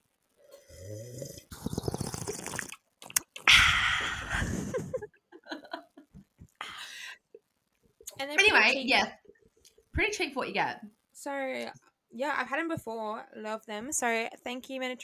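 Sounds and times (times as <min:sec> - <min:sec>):
person sipping a drink: 0:00.5 - 0:05.0
laughter: 0:03.9 - 0:06.1
speech: 0:08.2 - 0:09.2, 0:10.0 - 0:15.0.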